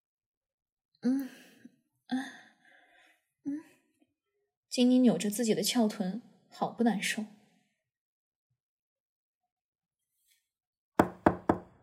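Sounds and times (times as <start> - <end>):
speech: 1.0 - 1.4, 2.1 - 2.4, 4.8 - 7.4
firm knocking on a door: 11.0 - 11.8.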